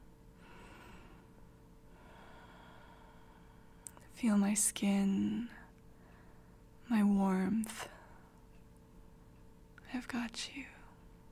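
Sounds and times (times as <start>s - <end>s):
faint steady hum: 0.0s - 11.3s
soft breathing: 0.4s - 4.1s, 5.6s - 6.7s
speech: 4.2s - 5.6s, 6.9s - 8.0s, 9.9s - 10.8s.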